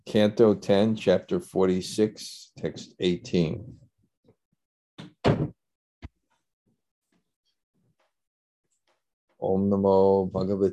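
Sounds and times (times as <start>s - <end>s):
speech: 0.1s - 3.8s, 9.4s - 10.7s
door pushed closed with a solid thud: 5.0s - 5.6s.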